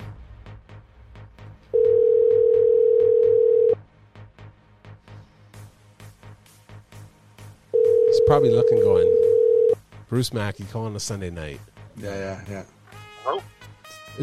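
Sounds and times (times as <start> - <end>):
telephone ringback tone while placing a call: 1.8 - 3.8, 7.8 - 9.8
speech: 8.3 - 9.3, 10.1 - 13.5.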